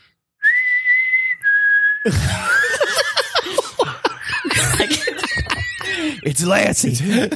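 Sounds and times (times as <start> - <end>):
person whistling two long notes: 0.4 - 2.6
speech: 2.0 - 2.5, 6.1 - 7.3
several people laughing and chuckling: 2.1 - 6.4.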